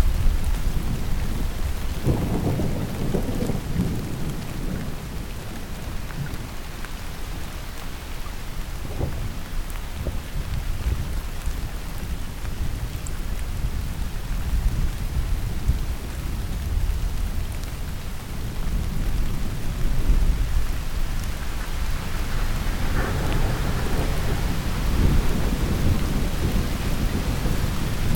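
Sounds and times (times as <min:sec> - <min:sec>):
distant thunder rumbling: 0:00.0 - 0:06.3, 0:19.5 - 0:28.1
steady rain: 0:00.0 - 0:28.1.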